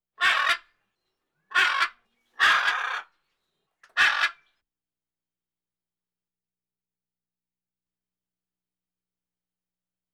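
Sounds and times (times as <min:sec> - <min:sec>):
macaw bird calls: 0:00.2 - 0:00.7, 0:01.5 - 0:03.1, 0:03.9 - 0:04.5.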